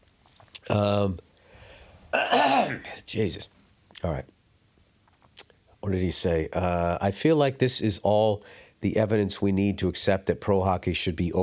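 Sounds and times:
speech: 0.7s - 1.3s, 2.1s - 4.4s, 5.8s - 11.4s
person coughing: 2.2s - 3.0s
throat clearing: 2.2s - 3.0s.

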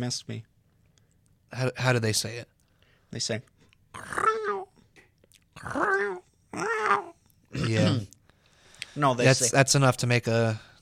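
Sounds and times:
speech: 0.0s - 0.5s, 1.5s - 2.5s, 3.1s - 4.2s, 5.6s - 8.1s, 9.0s - 10.7s
growly meows of an unwell male house cat: 4.0s - 4.7s, 5.6s - 7.9s.

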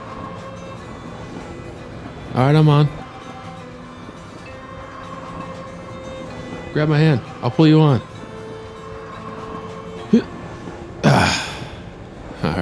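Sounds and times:
train rolling along its rails: 0.0s - 12.6s
speech: 2.4s - 3.0s, 6.8s - 8.1s, 10.1s - 10.4s
person calling out over the train noise: 11.0s - 11.8s.

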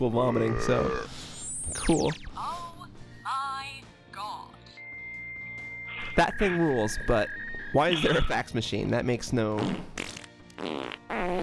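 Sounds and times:
speech: 0.0s - 2.4s, 6.2s - 9.9s, 10.6s - 11.4s
loud buzzy farts: 9.5s - 11.4s.

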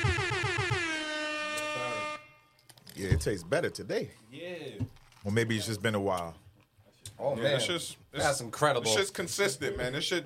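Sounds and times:
air horn blasts: 0.0s - 2.6s
speech: 3.0s - 6.4s, 7.2s - 10.2s.

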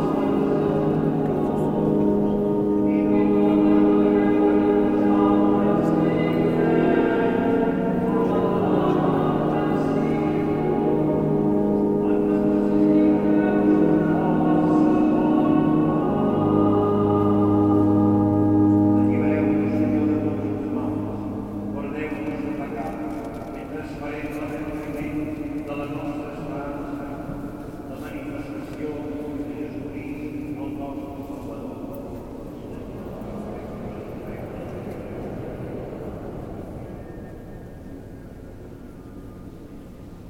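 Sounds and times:
sung or chanted tones during a service in a basilica: 0.0s - 23.1s
murmurs in a basilica: 0.0s - 40.2s.

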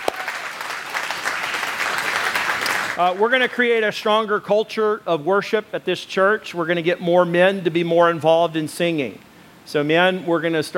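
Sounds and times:
large group clapping: 0.0s - 3.6s
speech: 3.0s - 10.7s.

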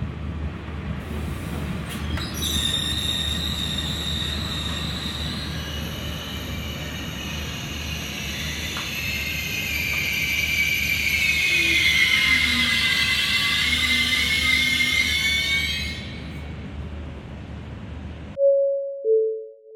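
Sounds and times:
train rumbling into a station platform: 0.0s - 18.4s
train brakes screeching metallically: 1.9s - 16.4s.

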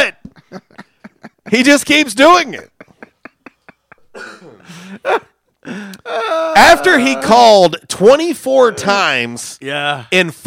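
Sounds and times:
laughter: 0.3s - 5.4s, 6.1s - 7.6s
speech: 1.5s - 2.7s, 5.0s - 10.4s
man burping: 4.1s - 5.2s, 5.9s - 7.5s.

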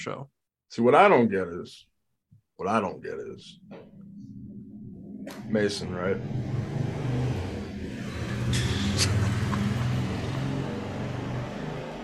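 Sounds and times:
speech: 0.0s - 1.9s, 2.6s - 4.3s, 5.2s - 7.3s, 8.5s - 9.3s
high-pitched squeal: 3.4s - 12.0s
car engine revving: 5.2s - 12.0s
road traffic rumble through an open window: 5.9s - 12.0s.

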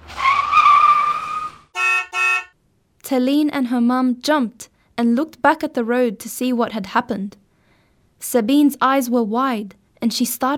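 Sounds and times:
car tires screeching as a car brakes suddenly: 0.0s - 2.0s
car horn honks: 1.7s - 2.6s
speech: 3.1s - 7.4s, 8.2s - 10.5s.

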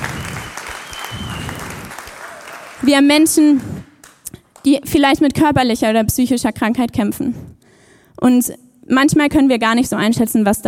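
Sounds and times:
audience applause: 0.0s - 4.2s
speech: 2.8s - 3.7s, 4.6s - 7.6s, 8.2s - 10.6s.

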